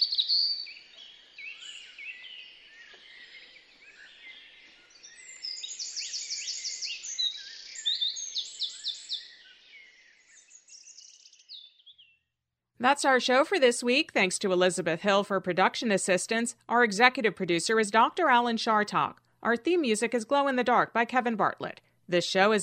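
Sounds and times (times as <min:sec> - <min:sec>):
birdsong with trills and chirping: 0:00.0 - 0:12.3
speech: 0:00.3 - 0:00.9, 0:12.8 - 0:22.6.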